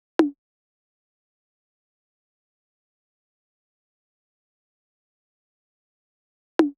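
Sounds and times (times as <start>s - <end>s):
percussion in C minor at 150 bpm: 0.2s - 0.4s, 6.6s - 6.7s.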